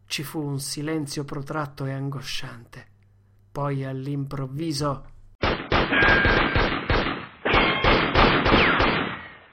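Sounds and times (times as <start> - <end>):
speech: 0.2 - 2.9, 3.6 - 6.6
volley of gunfire with rumble: 5.4 - 9.5.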